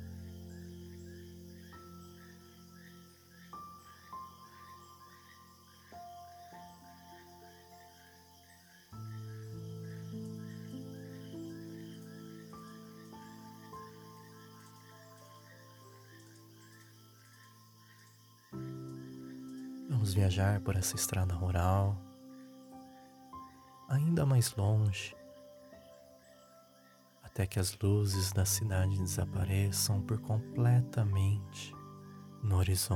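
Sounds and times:
crickets chirping at night along a rural road: 0.0 - 32.9
speech: 20.0 - 22.1, 23.9 - 25.2, 27.4 - 31.8, 32.4 - 32.9.

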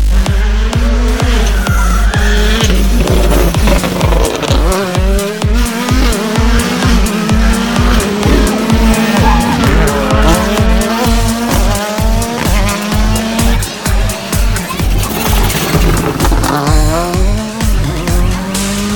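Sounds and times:
rally car engine revving and shifting gears: 0.0 - 18.9
rally car tire squeal and skidding: 1.1 - 4.1, 8.9 - 11.0, 14.6 - 16.7.

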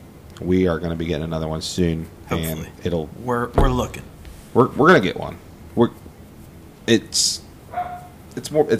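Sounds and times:
speech: 0.4 - 6.0, 6.9 - 7.5, 8.4 - 8.7
dog barking: 7.7 - 8.2.

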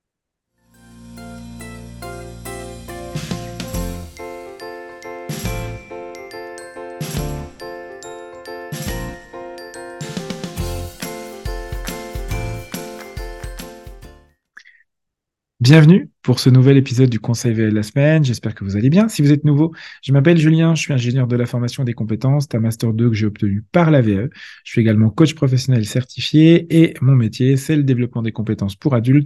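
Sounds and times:
podcast intro theme jingle: 0.7 - 14.3
steady bass: 0.8 - 4.2, 5.5 - 5.9, 12.3 - 12.7
punchy rhythmic hits: 1.1 - 6.3, 6.9 - 7.7, 8.7 - 14.3
tinkling bell-like tones: 3.7 - 14.2
speech: 15.7 - 29.2.

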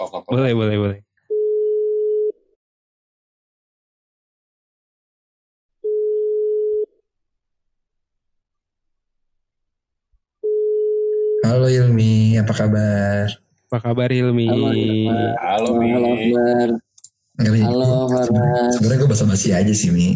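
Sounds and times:
speech: 0.0 - 1.1, 11.5 - 20.1
telephone ringback tone while placing a call: 1.3 - 2.3, 5.9 - 6.9.

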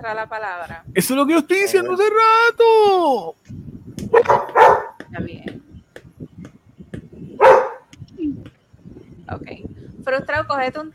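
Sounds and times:
speech: 0.0 - 3.6, 5.2 - 5.7, 10.1 - 10.9
dog barking: 4.1 - 5.0, 7.4 - 7.9.

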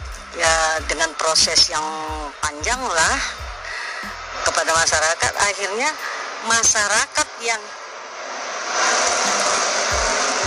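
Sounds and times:
jet-like roar of an airplane overhead: 0.0 - 4.9, 5.5 - 10.4
low thuds: 0.0 - 5.0
speech: 0.4 - 3.4, 4.0 - 7.8.

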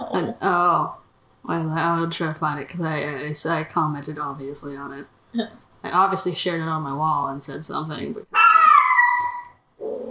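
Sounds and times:
speech: 0.2 - 8.4
pet dog howling: 8.4 - 10.0.

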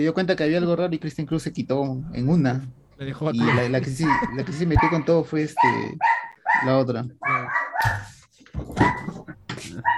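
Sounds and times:
speech: 0.0 - 8.0
dog barking: 3.4 - 8.2, 8.8 - 9.2.

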